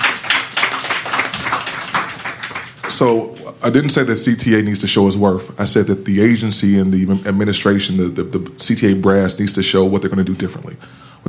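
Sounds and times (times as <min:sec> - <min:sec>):
crowd applauding: 0:00.0 - 0:03.1
speech: 0:03.0 - 0:11.2.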